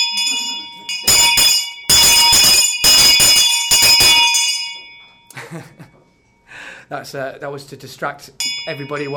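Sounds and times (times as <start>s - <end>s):
old school hand bell ringing: 0.0s - 6.4s, 8.4s - 9.1s
speech: 6.9s - 9.1s.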